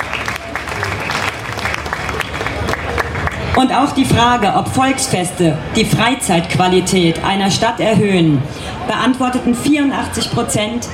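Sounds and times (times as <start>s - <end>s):
audience applause: 0.0s - 3.7s
faint murmur of voices: 0.0s - 10.9s
speech: 3.6s - 10.9s.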